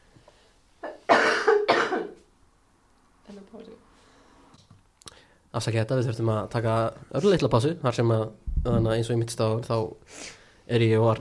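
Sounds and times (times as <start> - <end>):
harsh throaty coughs from someone recovering from an illness: 0.8 - 2.3
speech: 5.5 - 11.2.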